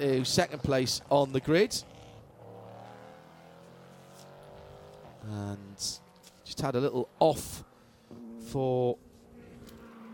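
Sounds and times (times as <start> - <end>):
speech: 0.0 - 1.9, 5.2 - 7.7, 8.5 - 9.0
two Porsche 963 GTP prototype race cars roaring through the final corner: 0.0 - 10.1.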